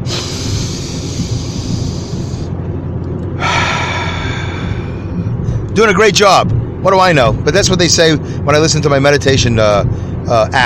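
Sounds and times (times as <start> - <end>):
deep breath in through the nose and out through the mouth in a guided breathing exercise: 0.0 - 2.5, 3.4 - 5.7
speech: 5.8 - 10.6.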